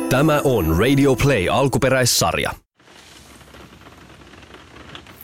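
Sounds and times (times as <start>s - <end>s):
speech: 0.1s - 2.6s
rain pattering on a skylight: 2.7s - 5.2s.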